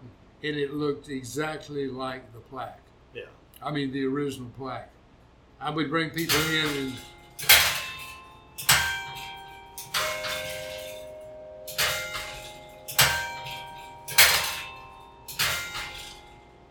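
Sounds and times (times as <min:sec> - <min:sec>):
speech: 0:00.4 - 0:05.0, 0:05.6 - 0:07.6
tower bell chiming marking the half hour: 0:06.2 - 0:16.6.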